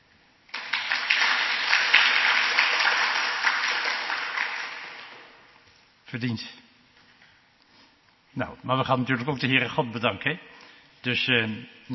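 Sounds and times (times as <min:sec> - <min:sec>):
group of children clapping: 0:00.5 - 0:05.4
speech: 0:06.1 - 0:06.6, 0:08.4 - 0:11.9.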